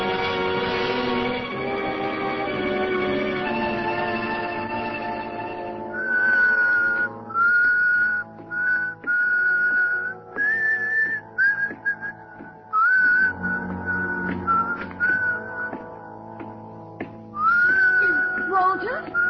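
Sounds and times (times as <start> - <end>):
soft music: 0.0 - 19.2
person whistling a melodic tune: 5.9 - 15.8, 17.4 - 19.2.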